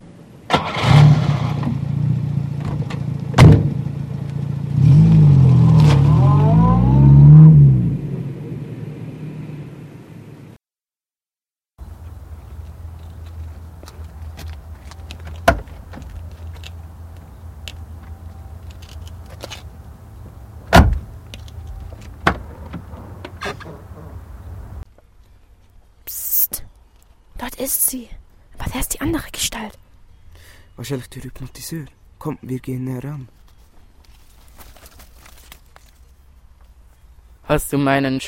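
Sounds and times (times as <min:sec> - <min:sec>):
car engine cranking, revving and pulling away: 0:00.5 - 0:10.6, 0:18.8 - 0:24.8
speech: 0:30.9 - 0:33.4, 0:37.5 - 0:38.2.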